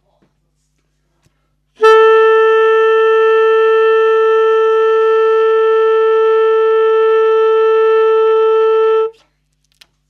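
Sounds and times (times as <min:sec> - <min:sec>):
saxophone through a mixing desk: 0:01.8 - 0:09.2.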